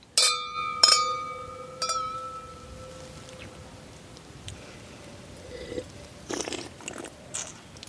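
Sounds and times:
wine glasses clinking: 0.2s - 3.6s
person slurping wine during a tasting: 5.4s - 7.5s.

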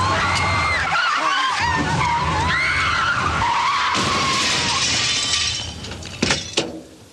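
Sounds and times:
car tires screeching in a long skid: 0.0s - 5.0s
car crashing into the shop window of a fur store: 3.8s - 6.7s
shop window glass shattering: 3.8s - 6.8s.

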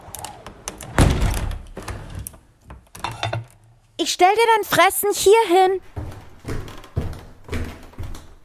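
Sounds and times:
door creaks, rattles and small knocks as it settles: 0.0s - 3.7s, 5.8s - 8.4s
door swinging and landing with a heavy thud: 0.8s - 2.2s
speech: 4.0s - 5.9s.

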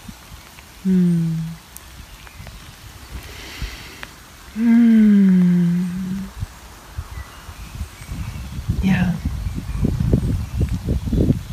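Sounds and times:
scattered water drips from rain: 0.0s - 6.3s
steady soft rain pattering outside: 0.0s - 11.5s
speech: 0.8s - 1.6s, 4.6s - 4.8s.

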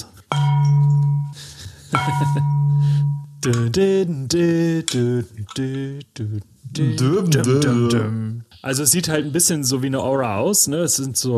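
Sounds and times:
bell ringing: 0.3s - 3.5s
speech: 2.0s - 11.3s.

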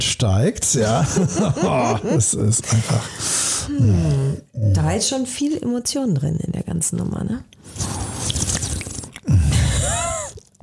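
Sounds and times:
speech: 0.0s - 8.1s
laughter: 0.8s - 3.2s
wet slurping of 2019-vintage wine from a glass: 7.6s - 9.8s.

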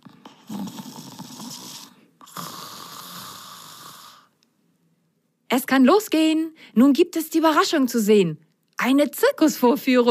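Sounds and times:
soft rasping snoring: 0.0s - 4.4s
speech: 5.5s - 10.1s.

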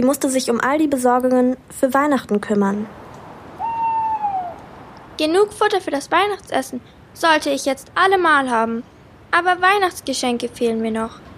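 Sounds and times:
speech: 0.0s - 3.0s, 5.2s - 11.3s
owl hooting: 3.5s - 5.0s.

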